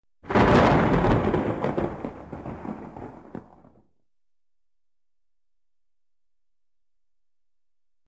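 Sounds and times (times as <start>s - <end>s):
thunder: 0.2s - 3.9s.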